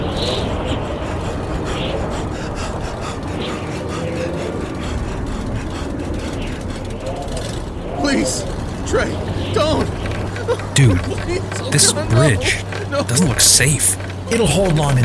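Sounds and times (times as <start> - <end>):
heavy truck engine rumbling as the vehicle slowly rolls forward: 0.0 - 15.0
laughter: 0.0 - 15.0
speech: 11.8 - 15.0.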